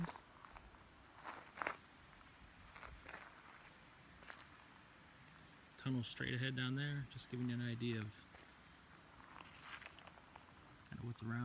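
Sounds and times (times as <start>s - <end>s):
footsteps crunching outdoors: 0.0s - 4.6s, 7.4s - 10.7s
steady high insect or cricket drone: 0.0s - 11.4s
speech: 5.8s - 8.3s, 11.0s - 11.4s.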